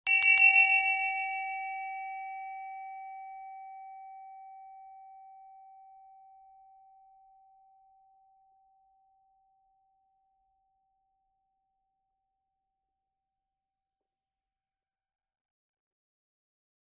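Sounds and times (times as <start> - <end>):
hand bell ringing: 0.0 - 3.0.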